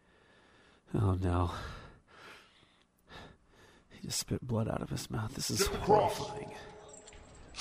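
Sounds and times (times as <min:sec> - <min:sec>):
man breathing shallowly after being kicked: 0:00.0 - 0:00.9, 0:01.5 - 0:04.0
speech: 0:00.9 - 0:01.8, 0:04.0 - 0:06.8.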